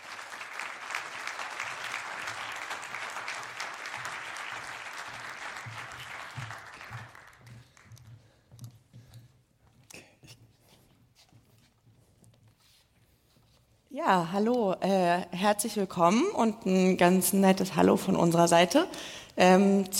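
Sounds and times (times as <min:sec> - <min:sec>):
crowd applauding: 0:00.0 - 0:08.0
speech: 0:14.0 - 0:19.9.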